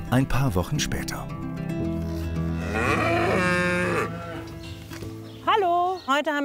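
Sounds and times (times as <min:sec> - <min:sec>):
speech: 0:00.1 - 0:01.3, 0:06.1 - 0:06.4
cows mooing before going out to pasture: 0:02.1 - 0:04.8.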